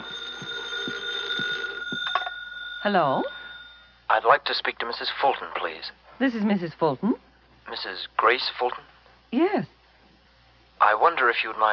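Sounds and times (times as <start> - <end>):
telephone ringing in the living room of a suburban home: 0.0 - 4.1
speech: 2.8 - 3.4, 4.1 - 9.8, 10.8 - 11.7.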